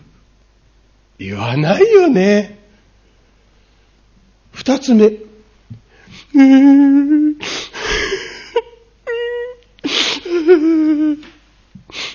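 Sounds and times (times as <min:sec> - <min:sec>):
speech: 0:01.2 - 0:02.6, 0:04.7 - 0:05.3, 0:06.3 - 0:07.6
person acting out crying: 0:06.3 - 0:11.4.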